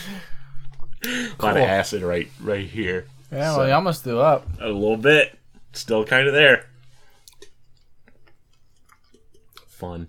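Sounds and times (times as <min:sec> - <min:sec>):
speech: 0:01.0 - 0:06.7, 0:09.8 - 0:10.0
chewing on a lollipop: 0:07.1 - 0:09.8.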